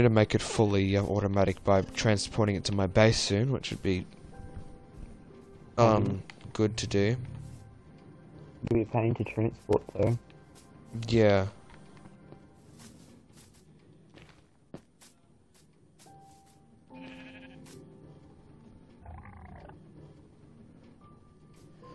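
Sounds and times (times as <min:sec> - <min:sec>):
speech: 0:00.0 - 0:04.2, 0:05.8 - 0:07.4, 0:08.6 - 0:10.3, 0:10.9 - 0:11.6
sheep bleating in a video game: 0:16.9 - 0:17.8.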